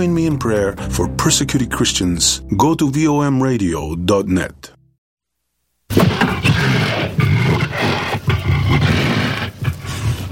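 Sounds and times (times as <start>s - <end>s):
speech: 0.0s - 4.8s
lion roaring: 5.9s - 10.3s.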